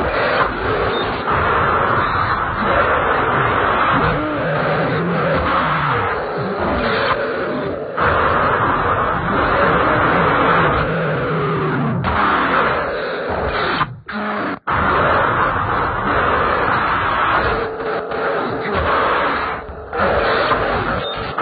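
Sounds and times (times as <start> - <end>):
radio: 0.1 - 21.3.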